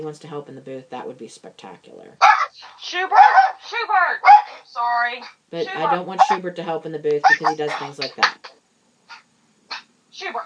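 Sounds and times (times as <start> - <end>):
speech: 0.0 - 8.6, 10.2 - 10.4
dog barking: 2.2 - 3.6, 4.2 - 4.6, 5.2 - 6.4, 7.2 - 8.5.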